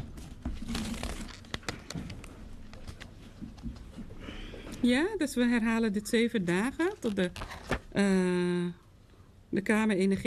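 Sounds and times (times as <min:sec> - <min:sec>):
paper sheet rustling and crinkling as it is handled: 0:00.2 - 0:03.2, 0:06.6 - 0:08.0
speech: 0:04.8 - 0:08.8, 0:09.5 - 0:10.2.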